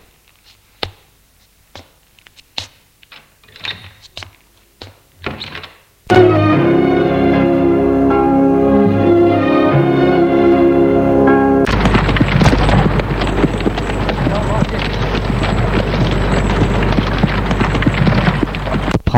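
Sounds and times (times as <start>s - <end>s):
short tonal passage: 6.1s - 17.5s
rumbling wheel noise of a horse-drawn cart: 11.6s - 19.0s
clip-clop of hooves of a horse-drawn cart on the road: 11.7s - 19.0s.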